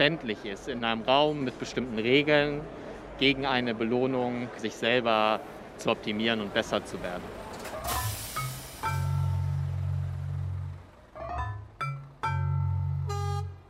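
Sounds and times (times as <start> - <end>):
speech: 0.0 - 8.0
diesel trucks of various makes driving through a port: 0.0 - 13.6
hissing bursts: 7.8 - 9.1.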